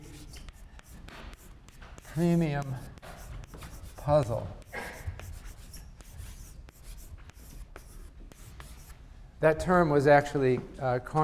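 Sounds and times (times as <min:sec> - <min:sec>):
handwriting scratching and rubbing on a board: 0:00.0 - 0:09.0
speech: 0:02.2 - 0:02.9, 0:04.0 - 0:04.6, 0:09.4 - 0:11.2.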